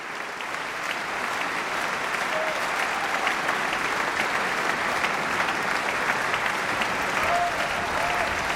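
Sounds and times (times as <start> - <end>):
large concert audience applauding orchestra: 0.0 - 8.5.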